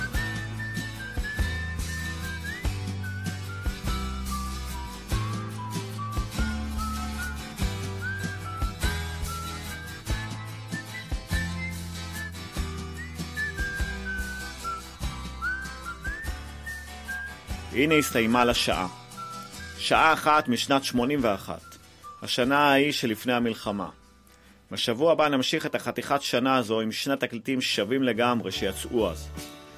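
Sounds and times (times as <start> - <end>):
person whistling a melody: 0.0 - 23.7
speech: 17.8 - 19.0, 19.9 - 24.0, 24.7 - 29.5.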